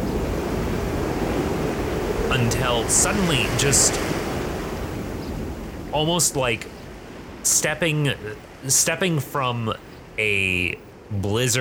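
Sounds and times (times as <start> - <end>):
windy rush: 0.0 - 8.6
ocean surf waves churning and washing: 0.0 - 11.5
speech: 2.3 - 4.1, 6.0 - 6.7, 7.4 - 11.5.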